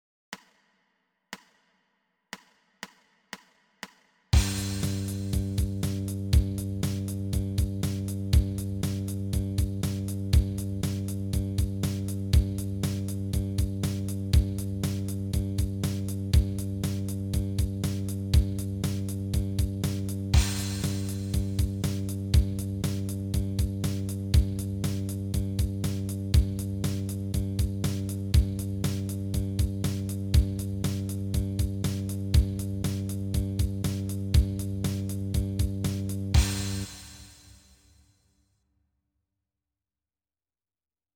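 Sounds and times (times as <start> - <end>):
bass guitar open G string: 4.4 - 11.5, 12.2 - 36.9.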